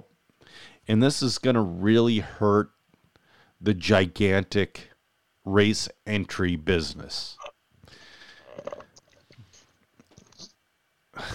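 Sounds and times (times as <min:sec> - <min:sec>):
speech: 0:00.6 - 0:02.8, 0:03.6 - 0:04.9, 0:05.5 - 0:08.0
slurping a drink: 0:08.4 - 0:09.6.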